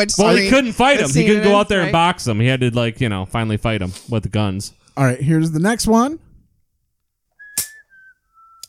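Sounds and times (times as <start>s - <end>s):
speech: 0.0s - 6.3s
man whistling a tune: 7.3s - 8.6s.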